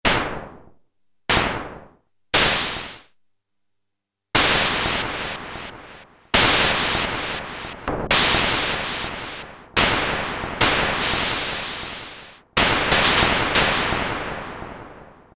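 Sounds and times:
synthesized gunshots from a Prophet-5 synthesizer factory patch: 2.4s - 3.0s, 4.4s - 14.0s.

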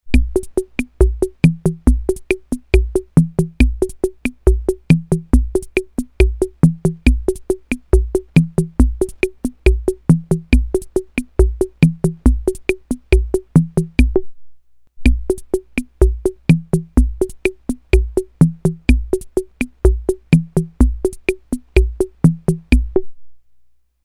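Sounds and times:
Ace Tone Rhythm Ace FR-2L drum machine rumba rhythm: 0.0s - 14.3s, 15.0s - 23.2s.

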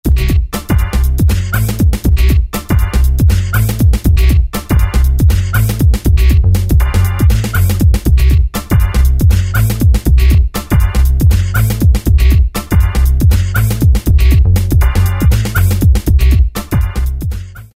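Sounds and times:
hip hop pattern on a groovebox: 0.0s - 17.7s.

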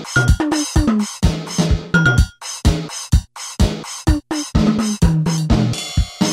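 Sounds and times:
Casio CSM-1 disco rhythm patterns: 0.1s - 2.4s, 3.8s - 6.1s.

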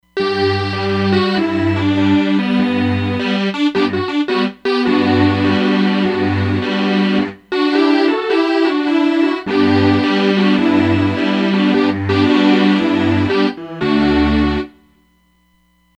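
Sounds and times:
Roland Fantom XR synthesizer strings: 0.2s - 14.7s.

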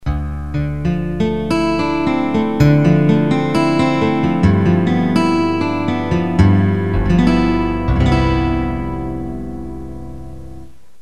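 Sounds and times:
guitar preset demo on Generalmusic pRP8: 0.0s - 11.0s.

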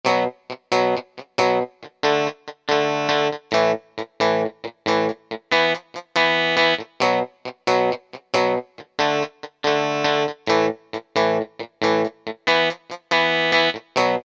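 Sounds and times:
surf guitar on E-mu PK-6: 0.0s - 14.2s.

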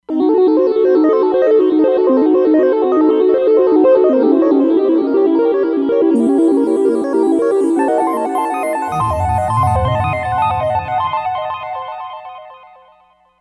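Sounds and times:
minor thirds on a Roland Fantom XR synthesizer: 0.4s - 12.3s.

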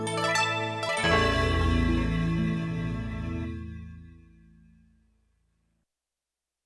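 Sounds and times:
tubular chimes on Yamaha TX16W: 0.1s - 4.1s.

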